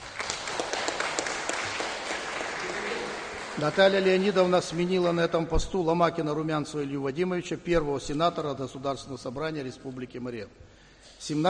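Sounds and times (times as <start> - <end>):
audience applause during a formal address: 0.0 - 4.5
speech: 3.6 - 11.4.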